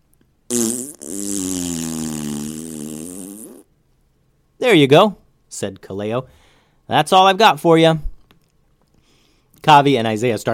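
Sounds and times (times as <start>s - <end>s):
loud fart: 0.5s - 3.7s
speech: 4.6s - 8.1s, 9.6s - 10.5s.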